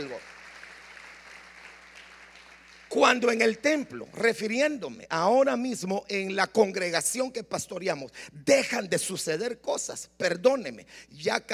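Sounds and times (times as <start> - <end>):
audience applauding: 0.0 - 3.6
speech: 3.0 - 11.5.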